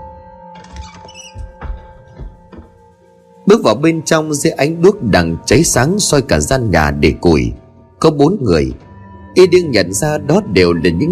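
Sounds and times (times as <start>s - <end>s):
door opening: 0.5s - 2.8s
speech: 3.5s - 8.8s, 9.4s - 11.1s.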